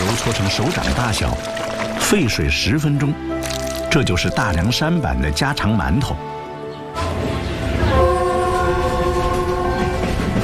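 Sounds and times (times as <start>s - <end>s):
speech: 0.2s - 6.4s
train horn sounding a long multi-tone blast in the Daliangshan mountains of China: 6.9s - 10.4s.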